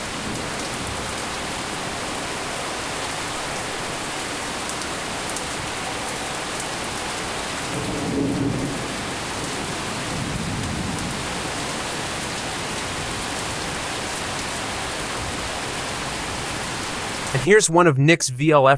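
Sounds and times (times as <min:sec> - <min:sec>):
steady dense rain during a thunderstorm outside a kitchen window: 0:00.0 - 0:17.5
faint low rumbles of thunder: 0:07.7 - 0:11.6
speech: 0:17.4 - 0:18.7.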